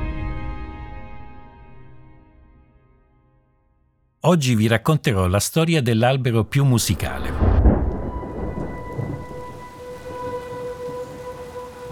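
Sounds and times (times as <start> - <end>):
speech: 4.2 - 7.5
steady rain pouring in a thunderstorm: 5.6 - 11.9
deep thunder rumbling low: 7.1 - 11.2
wind in a thunderstorm: 7.3 - 11.9.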